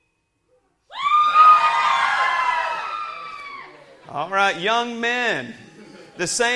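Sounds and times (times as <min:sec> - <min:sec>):
crowd of young women in audience yelling woo: 0:00.9 - 0:03.9
speech: 0:04.1 - 0:06.5.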